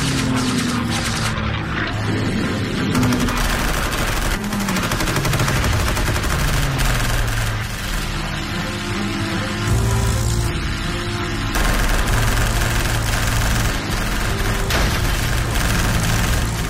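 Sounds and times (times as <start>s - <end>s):
fighter plane engines roaring as aircraft dive and climb: 0.0s - 16.6s
bursts of rapid machine-gun fire: 2.9s - 8.2s, 11.6s - 16.6s.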